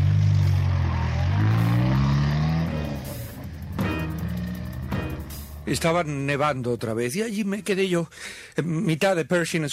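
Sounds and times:
car engine revving and pulling away from Pershing Square while snowing: 0:00.0 - 0:06.0
speech: 0:05.7 - 0:09.7.

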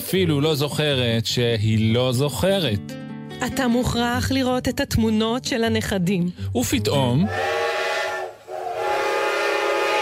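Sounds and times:
speech: 0:00.1 - 0:07.6
loud sustained train whistle with rich harmonic tones: 0:07.2 - 0:09.9.

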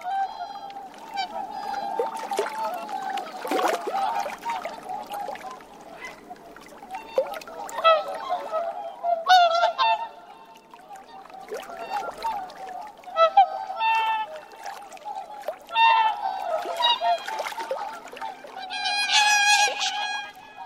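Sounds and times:
faint watery background at Lake Furen: 0:00.0 - 0:20.6
flock of whooper swans calling at Lake Furen on the Nemuro Peninsula: 0:00.0 - 0:20.6.

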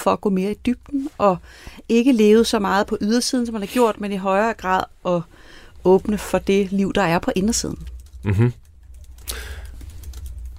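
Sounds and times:
speech: 0:00.0 - 0:08.6
typing on a computer keyboard: 0:07.7 - 0:08.2, 0:08.8 - 0:10.5.

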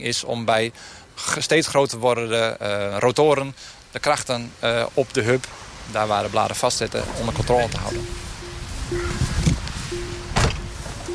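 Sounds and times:
speech: 0:00.0 - 0:08.2
car door opening and shutting: 0:07.0 - 0:11.1
steady electronic car chime: 0:07.7 - 0:11.1.

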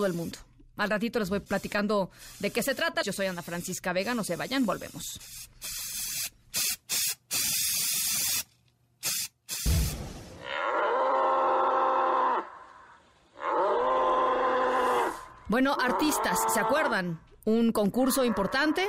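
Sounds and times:
speech: 0:00.0 - 0:05.8, 0:15.5 - 0:18.8
sharp hissing spray bursts: 0:01.4 - 0:10.4
bull deep mooing: 0:10.4 - 0:17.0.

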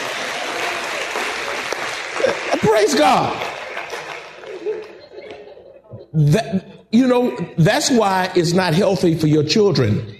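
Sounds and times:
church congregation clapping hands in praise during a worship service: 0:00.0 - 0:05.5
laughter: 0:02.1 - 0:06.8
speech: 0:02.6 - 0:03.4, 0:06.2 - 0:10.1.

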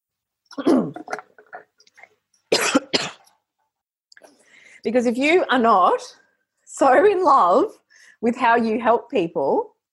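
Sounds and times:
sharp loud coughs: 0:00.5 - 0:01.2, 0:02.5 - 0:03.3
raspy throat clearing after lunch: 0:00.5 - 0:01.4, 0:02.5 - 0:03.3
speech: 0:04.8 - 0:06.2, 0:06.8 - 0:09.7.

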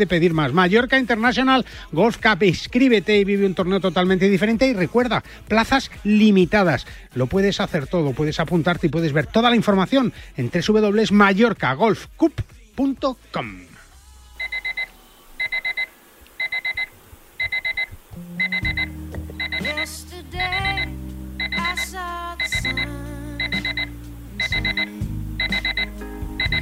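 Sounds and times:
speech: 0:00.0 - 0:13.6
electronic alarm clock beeping: 0:14.4 - 0:26.6
low droning music bed: 0:18.2 - 0:26.6.

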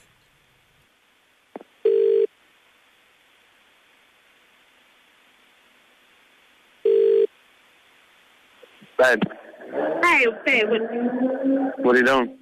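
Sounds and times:
short ringing tones heard through a telephone receiver: 0:01.8 - 0:02.3, 0:06.8 - 0:07.3
hissy phone line: 0:01.8 - 0:02.4, 0:06.8 - 0:07.4
speech: 0:09.0 - 0:12.3.

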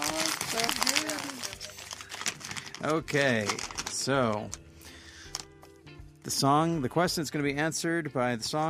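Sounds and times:
paper rustling and crinkling as it is unfolded: 0:00.0 - 0:04.6
speech: 0:02.8 - 0:04.6, 0:06.3 - 0:08.6.

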